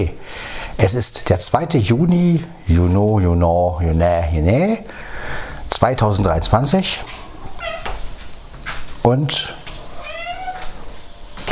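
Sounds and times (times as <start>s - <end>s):
speech: 0.0s - 7.2s, 9.0s - 9.6s
cat meowing: 7.1s - 8.0s, 9.9s - 10.9s.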